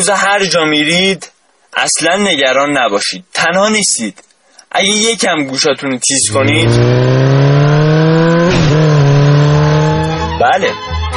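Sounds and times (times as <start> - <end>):
speech: 0.0 - 7.2
modified motorcycle engine with add-on parts revving loudly: 6.2 - 10.4.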